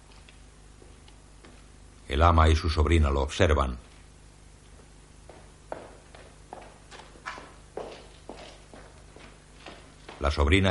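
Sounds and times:
footsteps of a man staggering across a courtyard: 0.0 - 1.8, 4.6 - 10.6
low steady hum: 0.0 - 10.6
speech: 2.1 - 3.9, 10.2 - 10.6.

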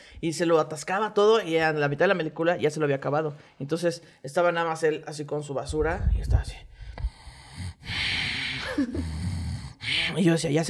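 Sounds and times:
speech: 0.2 - 6.7, 8.8 - 9.1, 10.1 - 10.6
person imitating cinema-goer snoring: 7.1 - 10.2.

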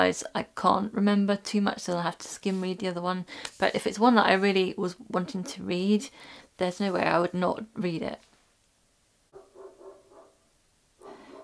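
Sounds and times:
speech: 0.0 - 8.3
dog barking: 9.3 - 10.4, 11.0 - 11.4.

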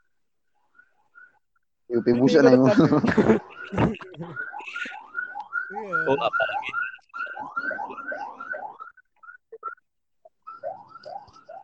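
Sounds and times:
ambulance siren yelping: 0.8 - 9.8, 10.4 - 11.6
speech: 1.9 - 5.0, 5.7 - 6.9
laughter: 2.1 - 8.3
scattered chirps: 3.4 - 11.6.

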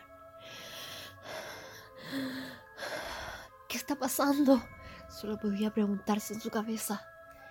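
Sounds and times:
panicked gasping breaths after running: 0.4 - 3.7
speech: 3.9 - 7.1.

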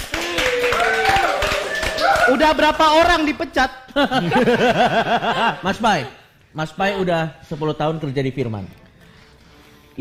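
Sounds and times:
people clapping for an employee: 0.0 - 3.1
speech: 2.3 - 8.8
laughter: 3.9 - 6.2.

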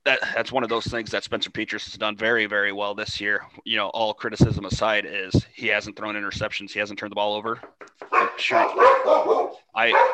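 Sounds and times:
speech: 0.1 - 10.1
knocking on wood: 7.6 - 8.3
several dogs barking excitedly: 8.1 - 10.1.

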